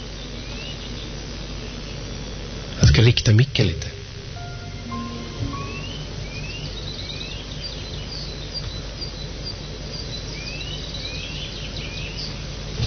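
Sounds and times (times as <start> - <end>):
steady outdoor hum: 0.0 - 12.8
speech: 3.0 - 4.0
bird chirps and short whistled calls outdoors: 4.4 - 12.4.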